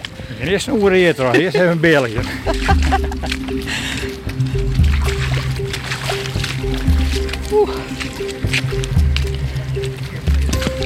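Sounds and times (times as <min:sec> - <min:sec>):
speech: 0:00.4 - 0:04.6, 0:07.5 - 0:09.0
laughter: 0:00.6 - 0:04.7
squelching footsteps in tidal mud: 0:00.8 - 0:10.8
steady low hum: 0:02.2 - 0:10.8.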